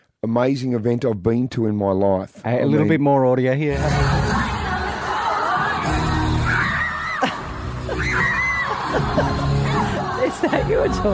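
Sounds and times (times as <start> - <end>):
speech: 0.2 - 4.5, 10.4 - 11.1
stadium crowd of about 100000 people roaring and screaming: 5.2 - 10.0
laughter: 7.0 - 11.1.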